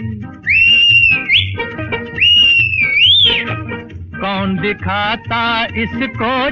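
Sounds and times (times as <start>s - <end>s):
rhythmic musical backing in a song about a train: 0.0s - 6.5s
train-style whistle: 0.5s - 3.5s
speech: 4.3s - 6.5s.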